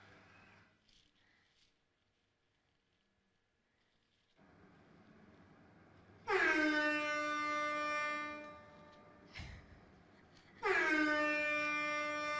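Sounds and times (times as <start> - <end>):
long loud horn blasts with a rich harmonic drone: 6.2 - 9.3, 10.6 - 12.3.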